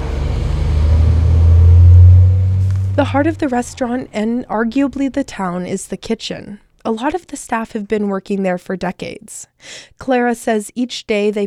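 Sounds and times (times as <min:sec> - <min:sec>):
logging truck engine roaring past: 0:00.0 - 0:05.4
speech: 0:03.0 - 0:11.4.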